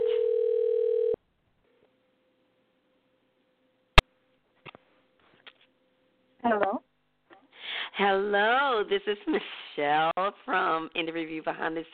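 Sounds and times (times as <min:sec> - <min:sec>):
telephone dial tone: 0:00.0 - 0:01.2
faint electrical hum: 0:00.0 - 0:11.9
speech: 0:08.0 - 0:11.9.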